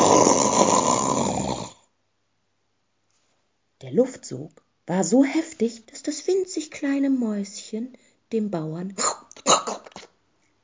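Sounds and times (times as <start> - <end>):
farmer snoring asleep in bed in a bedroom: 0.0 - 1.9
speech: 3.8 - 9.2.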